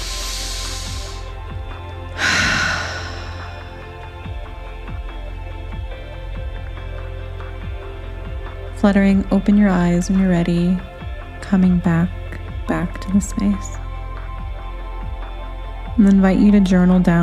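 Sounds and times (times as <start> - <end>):
deep breath with hands placed on the heart: 0.0 - 1.4, 2.2 - 3.9
speech: 8.8 - 10.9, 11.5 - 13.8, 16.0 - 17.2.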